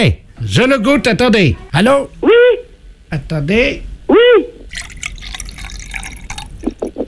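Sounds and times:
speech: 0.0 - 2.2, 3.1 - 4.5
liquid glugging out of a bottle as it is emptied: 4.7 - 7.0.

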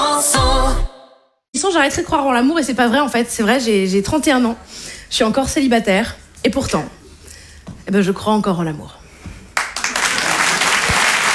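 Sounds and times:
speech: 1.6 - 7.0, 7.9 - 9.0
audience applause at a stand-up comedy show: 9.6 - 11.3.

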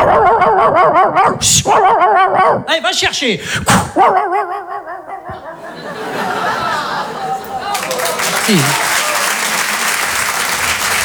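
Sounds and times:
laughter: 0.0 - 2.7, 3.9 - 11.0
person imitating yappy dog barks: 0.0 - 5.7
speech: 0.8 - 4.4, 8.5 - 8.9.

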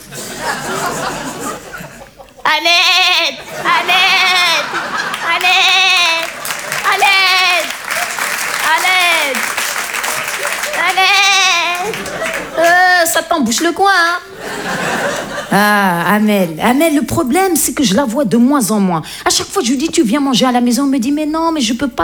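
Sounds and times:
laughter: 0.0 - 16.6
person imitating an Eid sheep bleating: 2.5 - 4.6, 5.4 - 6.3
speech: 2.6 - 5.9, 10.8 - 22.0
applause or crowd noise: 3.5 - 13.0.

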